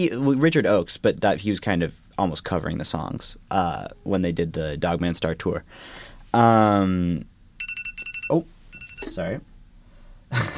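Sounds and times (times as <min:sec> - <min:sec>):
speech: 0:00.0 - 0:07.3, 0:08.3 - 0:09.5, 0:10.3 - 0:10.5
phone alarm ringtone: 0:07.6 - 0:09.1.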